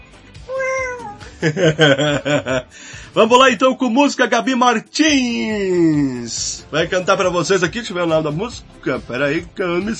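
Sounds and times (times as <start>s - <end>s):
person imitating a cat's meow: 0.5s - 1.3s
laughter: 1.4s - 2.7s
speech: 1.4s - 9.9s.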